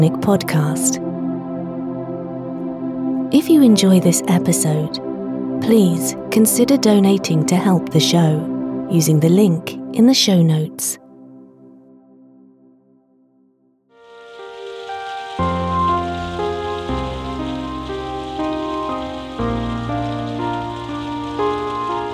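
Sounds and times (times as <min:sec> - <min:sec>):
speech: 0:00.0 - 0:01.1, 0:03.3 - 0:11.0
gentle music with calm sustained chords: 0:00.0 - 0:12.9, 0:14.0 - 0:22.1
light rain pattering: 0:14.0 - 0:22.1.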